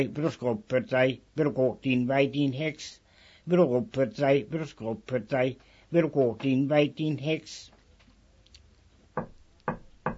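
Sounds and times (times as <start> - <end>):
speech: 0.0 - 7.7, 9.2 - 9.8
knocking on a monastery gate: 9.2 - 10.1.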